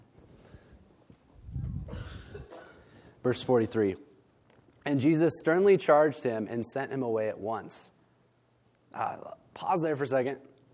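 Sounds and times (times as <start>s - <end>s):
person clearing throat: 1.8s - 2.9s
speech: 3.2s - 4.1s, 4.9s - 8.0s, 9.0s - 10.5s.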